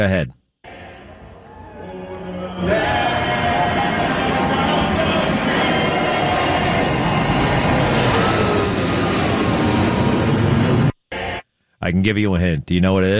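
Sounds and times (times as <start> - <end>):
speech: 0.0 - 0.4, 2.6 - 3.0, 11.8 - 13.1
faint crowd: 0.6 - 7.8
F-18 and F-16 fighter jets flying over in formation: 0.7 - 11.4.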